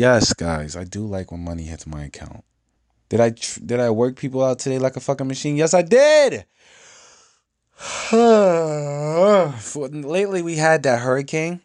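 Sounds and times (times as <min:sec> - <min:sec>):
speech: 0:00.0 - 0:02.5, 0:03.1 - 0:06.8, 0:07.8 - 0:11.6
loud wide-mouthed human yawn: 0:07.8 - 0:09.8.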